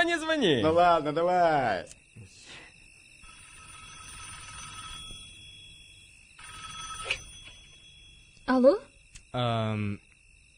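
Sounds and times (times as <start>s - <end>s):
speech: 0.1s - 2.3s, 8.5s - 10.0s
telephone ringing with a bright electronic tone: 3.1s - 8.7s.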